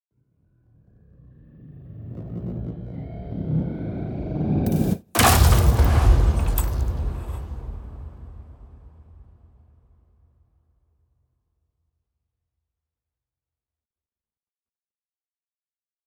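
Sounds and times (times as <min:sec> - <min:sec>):
designed impacts: 0:04.7 - 0:07.6.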